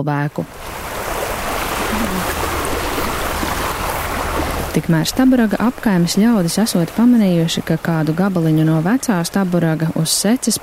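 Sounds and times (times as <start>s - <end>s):
speech: 0.0s - 0.8s, 4.7s - 10.6s
small spring flowing over a dolomite cliff on the Daugava River bank in Latvia: 0.4s - 10.6s.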